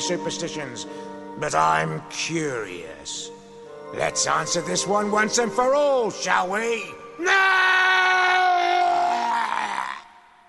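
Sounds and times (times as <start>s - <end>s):
speech: 0.0s - 7.9s
person screaming: 7.2s - 10.4s.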